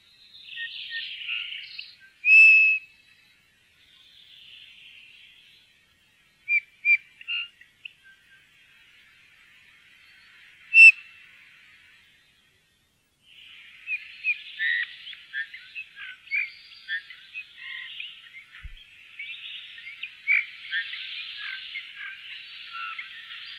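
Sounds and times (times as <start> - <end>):
faint background birdsong: 0.0 - 23.5
Eurasian bullfinch whistled call notes: 2.2 - 2.8, 10.7 - 11.0.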